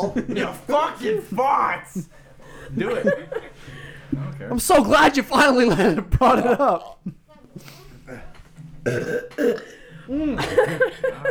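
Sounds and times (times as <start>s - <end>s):
laughter: 0.0s - 11.2s
speech: 0.0s - 11.2s
loud croaky burp: 8.8s - 10.6s.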